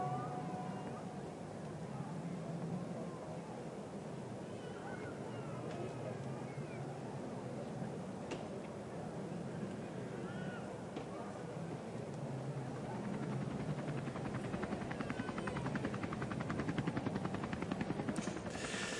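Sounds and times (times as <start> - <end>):
broad murmur of crowd noise: 0.0 - 18.9
helicopter rotor thumping overhead: 13.4 - 18.9.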